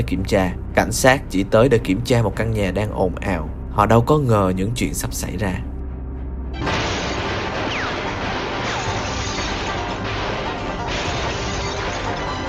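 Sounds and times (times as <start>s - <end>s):
speech: 0.0s - 5.7s
rapid machine gun fire from inside a house toward police cars: 6.7s - 12.4s.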